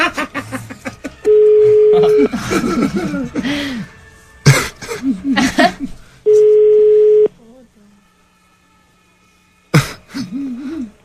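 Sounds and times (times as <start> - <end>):
laughter: 0.0 - 3.8, 4.5 - 6.0
outgoing call ringback tone: 1.3 - 2.3, 6.3 - 7.3
person clearing throat: 4.5 - 5.3, 9.7 - 10.9
people talking: 7.2 - 8.0.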